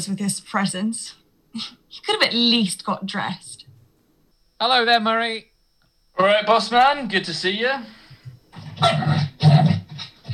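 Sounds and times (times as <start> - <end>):
speech: 0.0 - 3.6, 4.6 - 5.5, 6.2 - 8.0, 8.8 - 9.3
dog barking in a house: 8.8 - 10.3.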